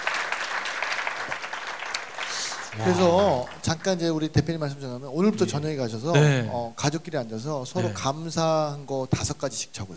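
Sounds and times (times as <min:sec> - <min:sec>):
audience applause: 0:00.0 - 0:04.0
speech: 0:02.8 - 0:09.9.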